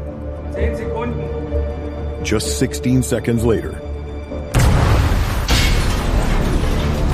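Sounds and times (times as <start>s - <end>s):
speech: 0.6s - 3.8s
burst of debris-like noise: 4.5s - 7.1s
deep torpedo explosion: 4.5s - 7.1s.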